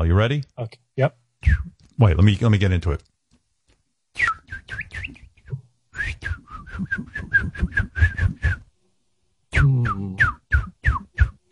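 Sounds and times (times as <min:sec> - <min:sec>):
speech: 0:00.0 - 0:03.1, 0:06.1 - 0:08.4
person whistling an imitation of a parakeet call: 0:01.4 - 0:01.8, 0:04.2 - 0:08.7, 0:09.5 - 0:11.5.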